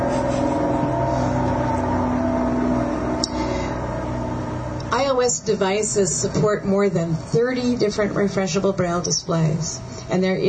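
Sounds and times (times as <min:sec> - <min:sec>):
lorry driving past outside: 0:00.0 - 0:05.8
speech: 0:05.2 - 0:10.4.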